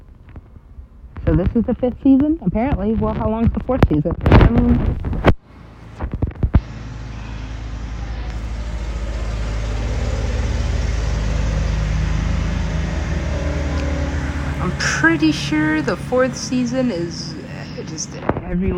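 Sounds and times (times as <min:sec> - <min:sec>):
road traffic rumbling: 0:00.0 - 0:04.2, 0:05.4 - 0:18.7
speech: 0:01.3 - 0:05.3, 0:15.1 - 0:18.7.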